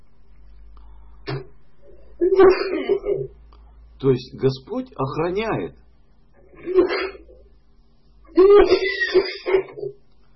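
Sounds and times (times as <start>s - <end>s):
person coughing into microphone: 1.2s - 1.6s, 2.3s - 3.2s, 6.6s - 7.3s, 8.8s - 10.0s
speech: 2.2s - 3.4s, 4.0s - 5.8s, 6.6s - 7.2s, 8.4s - 9.3s.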